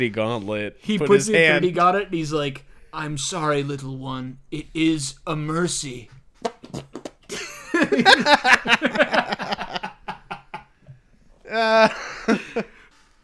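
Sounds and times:
speech: 0.0 - 6.8, 7.9 - 9.6, 11.5 - 12.7
people laughing and snickering: 7.3 - 10.7, 11.5 - 12.8.

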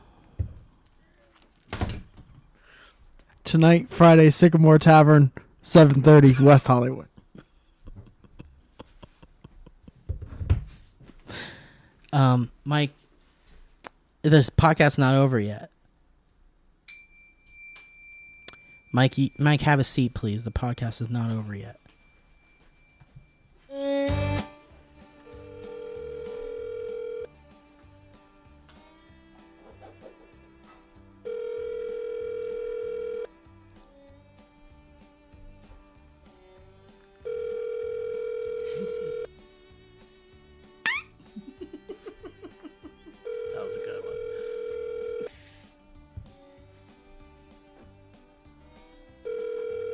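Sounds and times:
faint noise: 0.0 - 49.9
speech: 3.5 - 7.1, 12.2 - 13.0, 14.2 - 15.7, 18.9 - 21.8
laughter: 7.2 - 10.1, 41.3 - 43.3
phone call electronic ringback tone ringing unanswered: 25.4 - 27.3, 31.3 - 33.3, 37.2 - 39.3, 43.2 - 45.3, 49.2 - 49.9.

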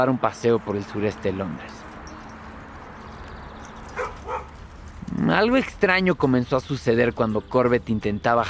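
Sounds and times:
speech: 0.0 - 1.8, 5.3 - 8.4
black-and-white collie barking and whimpering: 3.9 - 4.6.

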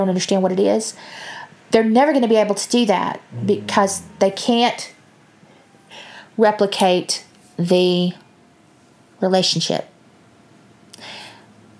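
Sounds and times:
speech: 0.0 - 5.0, 5.9 - 8.2, 9.2 - 9.9
dog snoring: 3.3 - 4.7.

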